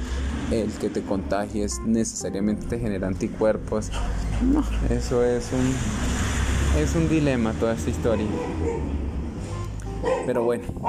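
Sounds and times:
speech: 0.5 - 9.0, 10.0 - 10.8
dog barking and yipping: 8.1 - 9.0, 10.0 - 10.8.

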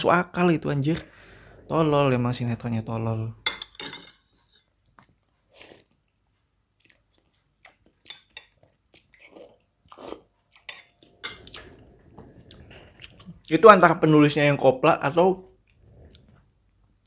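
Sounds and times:
speech: 0.0 - 3.4, 13.5 - 15.5
cutlery clinking against a plate: 3.5 - 4.3.

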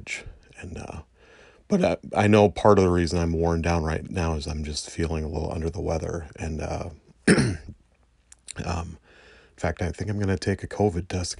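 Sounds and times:
speech: 0.0 - 1.1, 1.7 - 7.7, 8.6 - 9.0, 9.6 - 11.3
man clearing his throat with a guttural grunt: 7.2 - 7.8
man coughing: 7.2 - 7.8.

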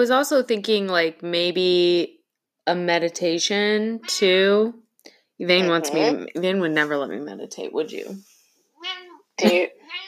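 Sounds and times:
speech: 0.0 - 4.8, 5.4 - 10.0
cat meowing: 4.0 - 4.4, 5.6 - 6.2, 8.8 - 10.0.

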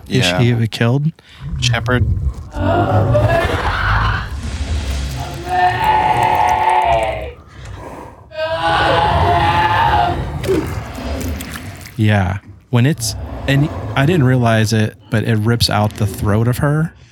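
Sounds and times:
rough growly undertone: 0.0 - 17.1
speech: 0.1 - 3.8, 12.0 - 17.1
bear creature imitating a woman's scream: 2.5 - 7.4, 8.3 - 11.8.

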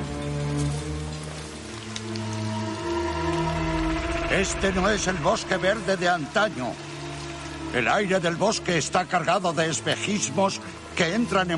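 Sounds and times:
rain falling: 0.0 - 11.5
sustained low humming tones: 0.8 - 7.7
speech: 4.3 - 6.8, 7.7 - 11.5.

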